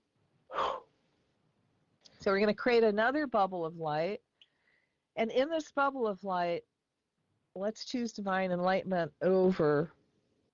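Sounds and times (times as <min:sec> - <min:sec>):
deep breath drawn in and let out during a group exercise: 0:00.5 - 0:00.9, 0:04.4 - 0:05.0
speech: 0:02.2 - 0:04.2, 0:05.2 - 0:06.7, 0:07.6 - 0:10.0.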